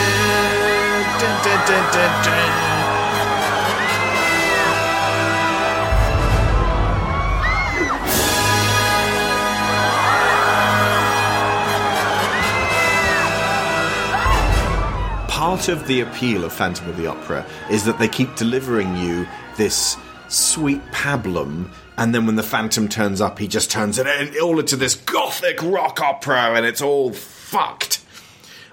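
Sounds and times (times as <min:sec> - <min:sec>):
large group of ballerinas screaming in a stage show: 0:00.1 - 0:20.2
speech: 0:01.4 - 0:02.7, 0:15.5 - 0:28.0.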